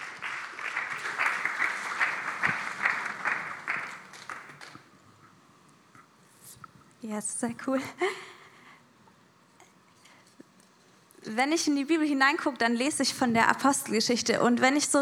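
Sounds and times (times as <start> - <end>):
audience applause: 0.0 - 4.9
speech: 7.0 - 8.3, 11.3 - 15.0.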